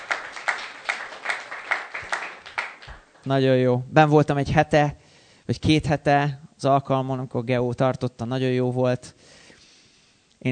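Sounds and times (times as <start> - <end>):
church congregation clapping rhythmically: 0.0 - 3.4
speech: 3.2 - 9.4.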